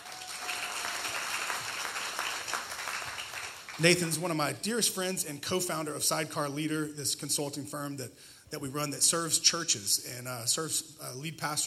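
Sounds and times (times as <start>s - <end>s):
crowd applauding: 0.0s - 4.2s
speech: 3.8s - 11.6s.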